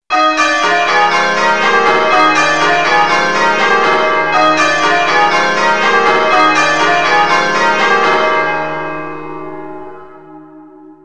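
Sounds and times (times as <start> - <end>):
bells change ringing: 0.1 - 10.6.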